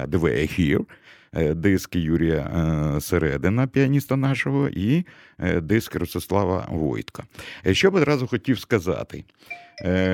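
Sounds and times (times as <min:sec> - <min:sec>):
speech: 0:00.0 - 0:10.1
buzzy mobile phone ringtone: 0:09.5 - 0:10.1.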